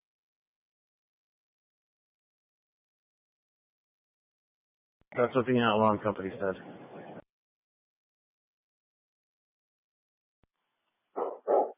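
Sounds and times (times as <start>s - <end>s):
speech: 5.1s - 6.8s
dog barking inside a house: 11.2s - 11.7s.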